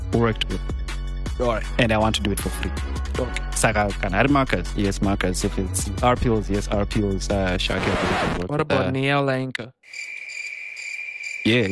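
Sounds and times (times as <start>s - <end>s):
speech: 0.2s - 0.8s, 1.4s - 10.1s, 11.4s - 11.7s
crickets chirping: 9.8s - 11.7s.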